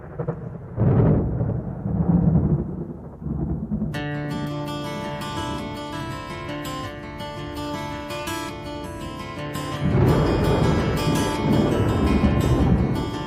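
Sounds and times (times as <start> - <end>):
deep rolling thunder: 0.0 - 6.3, 9.8 - 13.2
sustained musical intro with ringing tones: 4.0 - 13.2.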